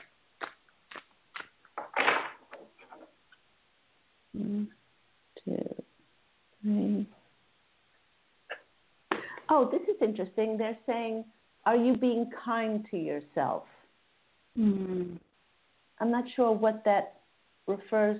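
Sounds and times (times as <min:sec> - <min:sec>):
deck of cards being shuffled: 0:01.4 - 0:03.1
person murmuring: 0:04.4 - 0:04.8, 0:06.6 - 0:07.2, 0:14.6 - 0:15.2
speech: 0:04.4 - 0:04.8, 0:09.6 - 0:13.8, 0:14.6 - 0:15.2, 0:16.0 - 0:18.1.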